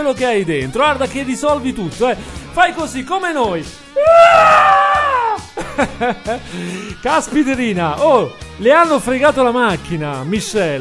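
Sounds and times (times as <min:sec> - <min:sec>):
speech: 0:00.0 - 0:05.0, 0:05.8 - 0:10.7
person giving a liberating scream: 0:04.0 - 0:05.5
laughter: 0:05.4 - 0:06.9.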